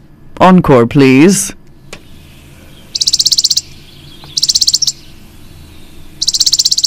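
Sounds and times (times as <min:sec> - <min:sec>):
speech: 0:00.4 - 0:01.6
chipping sparrow singing dry trills: 0:01.8 - 0:06.8.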